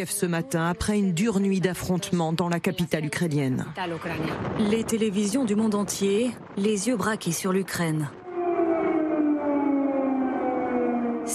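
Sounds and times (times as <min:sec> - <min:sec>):
speech: 0:00.0 - 0:08.2
air-raid war siren wailing: 0:08.1 - 0:11.3.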